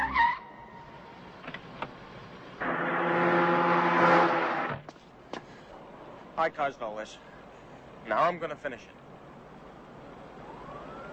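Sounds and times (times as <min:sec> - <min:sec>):
car tires squealing while skidding to a stop: 0:00.0 - 0:00.9, 0:02.6 - 0:04.8
speech: 0:06.4 - 0:07.3, 0:08.0 - 0:09.0.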